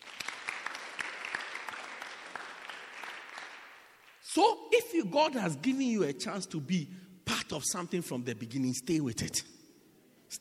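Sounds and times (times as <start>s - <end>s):
audience clapping: 0.0s - 4.4s
speech: 4.4s - 9.6s.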